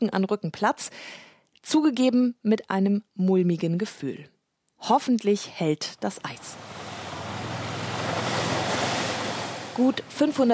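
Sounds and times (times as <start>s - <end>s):
speech: 0.0s - 6.9s, 9.8s - 10.5s
wind blowing over a frozen lake: 6.3s - 10.5s.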